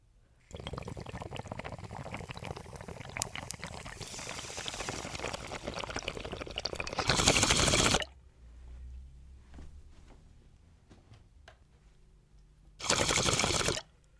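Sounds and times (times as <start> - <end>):
18-inch beaker bong bubbling during a rip: 0.5 - 8.1, 12.8 - 13.8.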